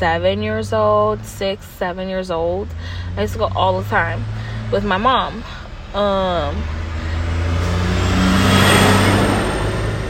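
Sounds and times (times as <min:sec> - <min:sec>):
speech: 0:00.0 - 0:06.8
loud truck passing by: 0:02.6 - 0:10.0.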